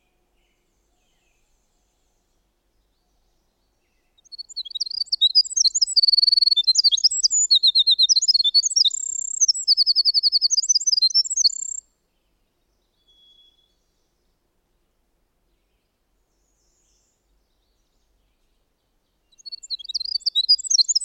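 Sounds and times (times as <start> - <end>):
winter wren singing: 3.1 - 11.8, 19.2 - 21.0.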